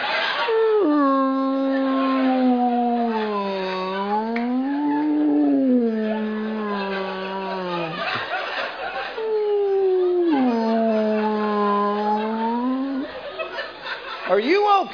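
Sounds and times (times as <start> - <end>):
laughter: 0.0 - 0.8, 2.1 - 14.7
man's voice imitating humpback whale song moans: 0.5 - 8.2, 9.2 - 13.1
speech: 14.3 - 14.9.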